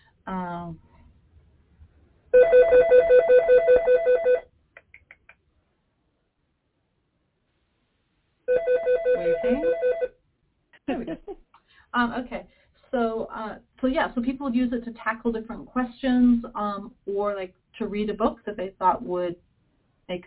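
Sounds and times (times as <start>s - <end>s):
speech: 0.3s - 0.9s, 13.9s - 19.5s, 20.1s - 20.2s
telephone ringing while waiting for voicemail: 2.4s - 4.4s, 8.5s - 10.1s.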